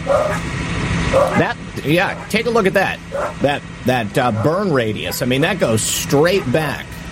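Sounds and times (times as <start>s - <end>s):
dogs barking: 0.0s - 0.5s, 1.1s - 2.5s, 3.1s - 3.5s, 4.2s - 5.3s, 6.1s - 6.8s
steady low hum: 0.0s - 7.0s
speech: 1.1s - 7.0s.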